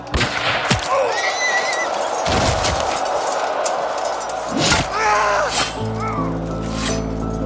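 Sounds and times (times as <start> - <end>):
dense crackling battle din: 0.0 - 7.3
rifle shots during battle: 0.1 - 0.9.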